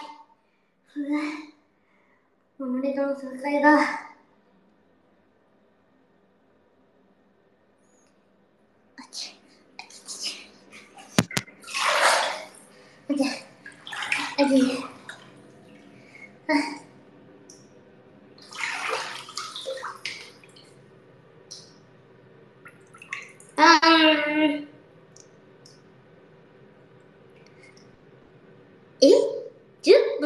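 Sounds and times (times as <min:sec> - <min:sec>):
speech: 0:02.6 - 0:04.1
hot bath water sloshing and splashing in a bathtub: 0:09.1 - 0:30.2
soft water drips: 0:09.8 - 0:23.6, 0:24.9 - 0:28.5.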